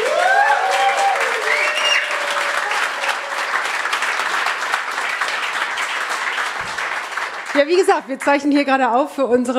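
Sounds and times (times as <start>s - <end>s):
audience whooping and cheering: 0.0s - 3.9s
full-house live audience applauding at a stage show in Berlin: 0.0s - 8.6s
speech: 7.6s - 9.5s.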